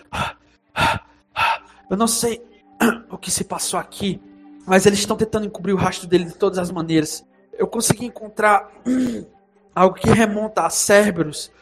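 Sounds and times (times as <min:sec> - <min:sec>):
voice imitating heavy panting breath: 0:00.0 - 0:01.8
speech: 0:01.9 - 0:11.5.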